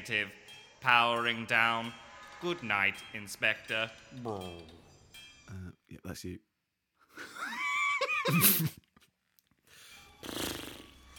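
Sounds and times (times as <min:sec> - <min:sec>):
speech: 0:00.0 - 0:04.8, 0:05.5 - 0:06.5, 0:08.2 - 0:08.8, 0:10.2 - 0:10.5
horse snorting: 0:10.2 - 0:11.0.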